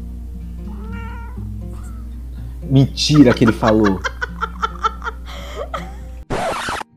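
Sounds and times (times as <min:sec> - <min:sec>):
steady low hum: 0:00.0 - 0:06.2
cat meowing into a microphone: 0:00.6 - 0:02.2
speech: 0:02.7 - 0:04.1
laughter: 0:02.8 - 0:06.2.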